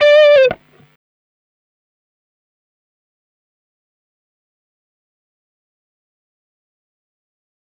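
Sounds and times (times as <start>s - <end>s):
dry lifestyle guitar solo in C at 125 BPM: 0.0s - 0.6s.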